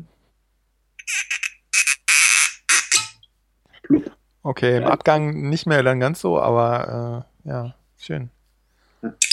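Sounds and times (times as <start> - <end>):
cork squeaking as worked out of a whisky bottle: 1.0 - 3.2
speech: 3.9 - 8.4, 9.0 - 9.3.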